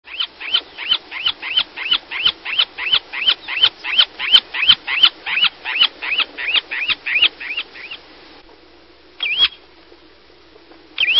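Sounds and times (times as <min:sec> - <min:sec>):
semipalmated plover calling: 0:00.1 - 0:08.0.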